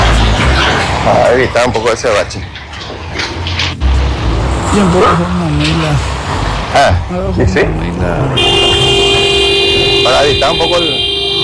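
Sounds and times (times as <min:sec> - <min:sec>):
steady road and engine noise in Luque: 0:00.0 - 0:11.4
speech: 0:01.3 - 0:02.6, 0:04.8 - 0:08.8, 0:10.1 - 0:11.4
car horn honking in Luque: 0:08.3 - 0:11.4.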